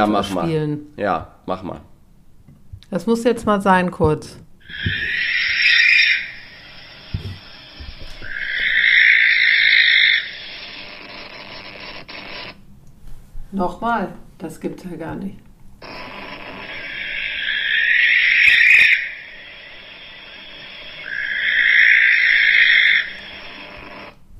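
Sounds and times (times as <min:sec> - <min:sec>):
speech: 0:00.0 - 0:01.9, 0:02.9 - 0:05.4, 0:13.5 - 0:15.5
faint steady noise: 0:00.0 - 0:24.3
barn owl screeching: 0:04.6 - 0:11.5, 0:15.8 - 0:24.1.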